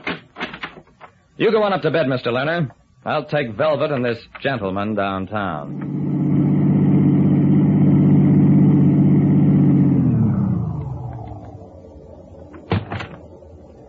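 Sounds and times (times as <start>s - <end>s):
speech: 1.4s - 6.0s
car engine roaring as the car is driven off fast: 5.6s - 13.8s.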